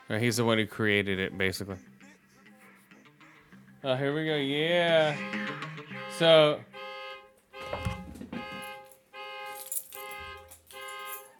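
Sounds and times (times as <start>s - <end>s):
speech: 0.1s - 1.9s, 3.8s - 5.6s, 6.2s - 6.7s
car alarm honking, set off by key fob panic button: 4.8s - 11.3s.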